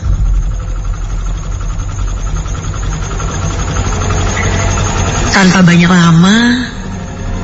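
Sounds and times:
motorcycle engine starting and idling: 0.0s - 6.0s
speech: 5.4s - 6.7s.

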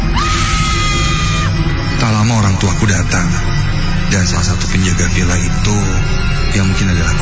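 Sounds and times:
possessed woman screaming hysterically in a villa bedroom: 0.1s - 1.6s
speech: 2.6s - 7.2s.

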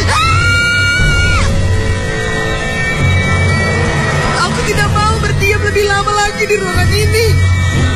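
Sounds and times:
loud shrill terrified scream: 0.0s - 1.8s
low rumbling background: 0.0s - 7.9s.

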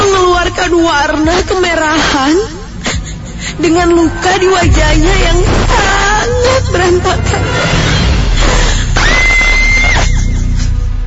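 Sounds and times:
dense rumbling background: 0.0s - 11.0s
speech: 3.6s - 7.9s
woman screaming in fright: 8.4s - 10.4s.

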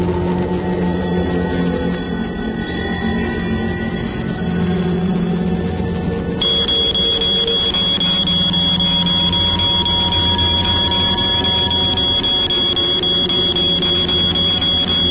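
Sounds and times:
dense buzzing noise: 0.0s - 15.0s
mobile phone alarm ringing: 6.4s - 15.0s.

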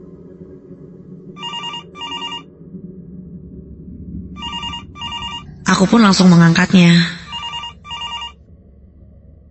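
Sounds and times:
low steady hum: 0.0s - 9.4s
hotel telephone ringing with an incoming call: 1.4s - 2.4s, 4.4s - 5.5s, 7.2s - 8.4s
speech: 5.7s - 7.2s.

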